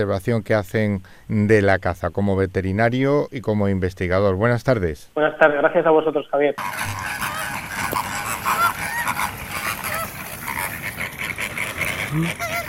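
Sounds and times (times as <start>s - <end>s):
speech: 0.0s - 7.2s, 12.1s - 12.4s
dense chorus of wetland birds calling at a nature reserve: 6.6s - 12.6s
goose-like honks at a wetland nature reserve: 6.6s - 12.6s.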